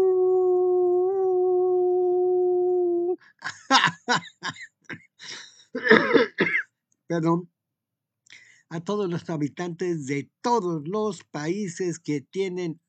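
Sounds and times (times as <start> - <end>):
person howling as a greeting: 0.0 - 3.2
laughter: 3.4 - 4.6, 5.2 - 6.4
speech: 3.4 - 4.7, 7.1 - 7.5, 8.7 - 12.8
person coughing and clearing throat: 4.2 - 6.7.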